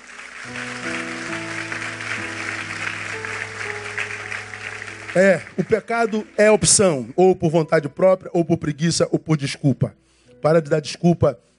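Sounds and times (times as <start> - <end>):
audience applauding: 0.0 - 6.7
held keyboard or organ chords: 0.0 - 8.4
speech: 0.4 - 0.8, 5.2 - 11.5.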